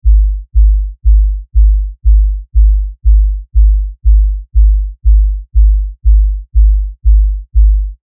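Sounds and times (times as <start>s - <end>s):
high-cut kick drum: 0.0s - 8.0s.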